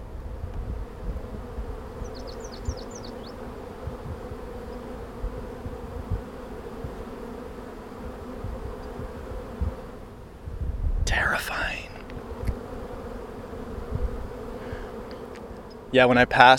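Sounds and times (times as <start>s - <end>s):
honeybees swarming around wooden hive boxes: 0.0s - 16.5s
faint bird chirps: 2.0s - 3.4s
speech: 11.4s - 11.8s, 15.9s - 16.5s.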